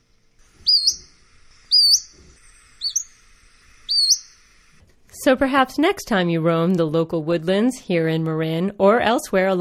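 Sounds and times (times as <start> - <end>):
Pacific-slope flycatcher giving high slurred rising peeps: 0.5 - 4.7
speech: 5.2 - 9.6.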